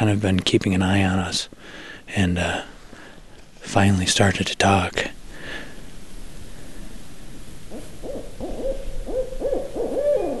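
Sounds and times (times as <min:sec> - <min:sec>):
speech: 0:00.0 - 0:02.7, 0:03.6 - 0:05.2
steady hiss: 0:00.0 - 0:10.3
owl hooting in an eastern hemlock: 0:07.7 - 0:10.3.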